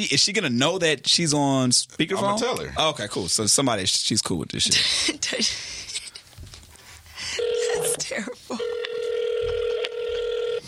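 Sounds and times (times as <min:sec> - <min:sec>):
speech: 0:00.0 - 0:05.8
telephone ringback tone over the line: 0:07.4 - 0:10.6.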